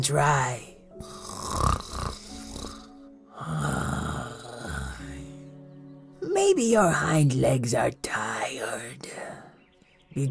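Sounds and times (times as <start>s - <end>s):
speech: 0.0s - 1.2s, 6.4s - 9.3s
15-year-old pug snoring: 1.0s - 5.0s.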